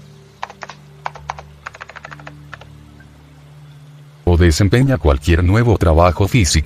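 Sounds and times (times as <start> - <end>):
faint steady hum: 0.0 - 6.6
typing on a computer keyboard: 0.4 - 2.7
speech: 4.4 - 6.6.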